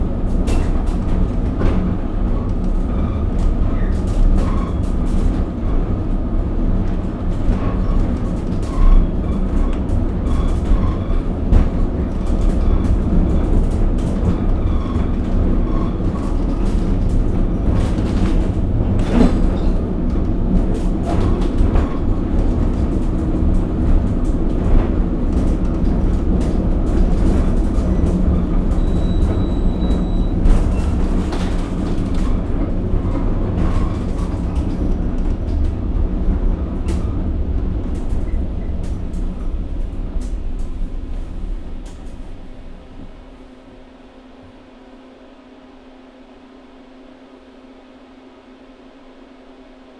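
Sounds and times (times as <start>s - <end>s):
funicular running: 0.0s - 44.8s.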